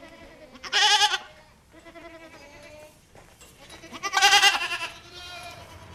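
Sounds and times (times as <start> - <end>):
farmyard murmurs: 0.0 - 5.9
goats bleating: 0.0 - 5.9.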